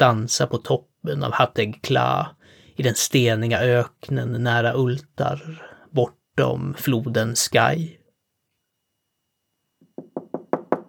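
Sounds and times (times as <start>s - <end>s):
speech: 0.0s - 8.0s
knocking on a wooden door: 9.8s - 10.8s.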